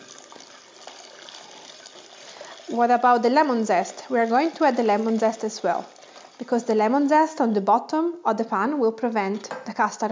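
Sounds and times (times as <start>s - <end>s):
milk poured in a thin stream: 0.0s - 6.6s
speech: 2.7s - 10.1s.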